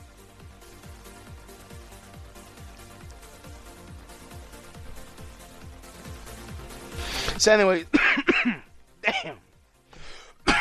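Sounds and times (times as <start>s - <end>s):
speech: 7.4s - 8.6s
harsh raspy coughs: 7.9s - 9.4s, 10.3s - 10.5s.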